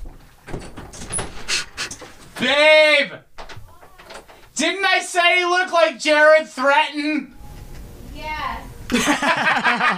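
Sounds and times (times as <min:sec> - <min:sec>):
door being opened: 0:00.0 - 0:02.6, 0:03.3 - 0:04.6
speech: 0:02.4 - 0:03.2, 0:04.6 - 0:07.3, 0:08.9 - 0:09.9
laughter: 0:08.9 - 0:09.9.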